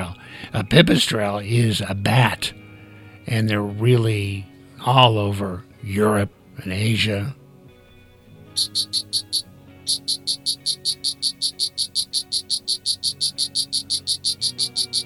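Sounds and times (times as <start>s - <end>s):
speech: 0.4s - 2.6s, 3.2s - 7.4s, 8.6s - 15.0s
poison dart frog calling in a fast trill: 8.6s - 15.0s.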